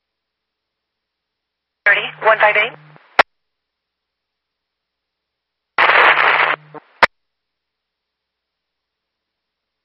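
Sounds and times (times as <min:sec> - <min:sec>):
steady low hum: 0:00.0 - 0:07.1
speech: 0:01.9 - 0:02.8
loud harsh burst of radio static: 0:01.9 - 0:03.2, 0:05.8 - 0:07.1.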